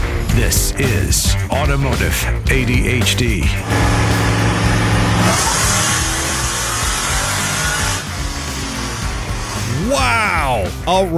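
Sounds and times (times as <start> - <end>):
speech: 0.4 - 4.2, 9.9 - 11.1
600 horsepower supercharged Chevy work van engine idling and revving: 3.6 - 9.8.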